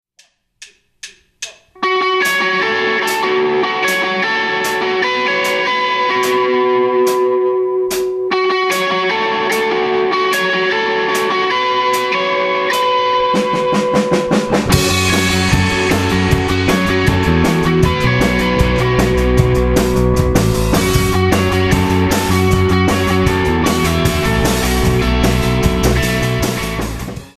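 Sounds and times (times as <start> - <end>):
Stratocaster electric guitar through AC30 amplifier: 1.8 - 27.3.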